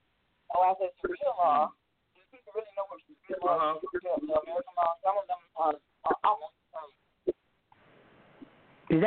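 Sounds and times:
static on a phone line: 0.5 - 7.4
speech: 0.6 - 1.8, 2.5 - 7.0.

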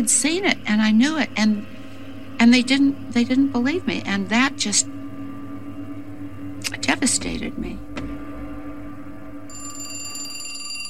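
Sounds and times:
speech: 0.0 - 1.8, 2.4 - 5.0, 6.9 - 7.9
low hum: 0.0 - 10.8
telephone bell ringing with a bright metallic trill: 9.5 - 10.8.

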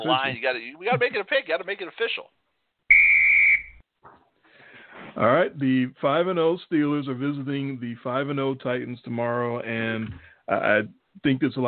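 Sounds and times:
speech: 0.0 - 2.4, 5.2 - 11.6
referee whistle blast: 2.9 - 3.8.

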